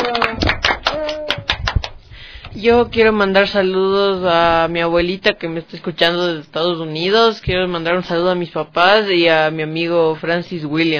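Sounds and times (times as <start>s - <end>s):
audience applause: 0.0s - 2.0s
speech: 2.6s - 10.9s.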